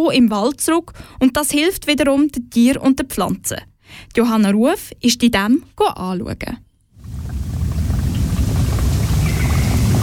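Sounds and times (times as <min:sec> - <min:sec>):
speech: 0:00.0 - 0:06.6
small forest stream babbling: 0:07.0 - 0:10.0.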